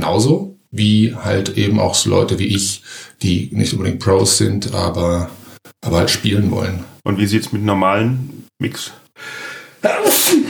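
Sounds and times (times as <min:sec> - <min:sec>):
speech: 0:00.0 - 0:10.4
person sneezing: 0:09.8 - 0:10.4.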